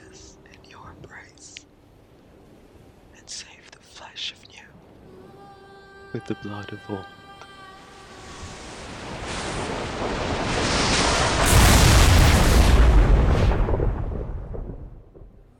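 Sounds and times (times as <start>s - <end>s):
speech: 6.1s - 7.2s
massive lightning strike explosion: 8.8s - 15.5s.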